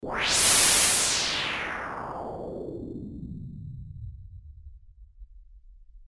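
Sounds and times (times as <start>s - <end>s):
wind: 0.0s - 2.5s.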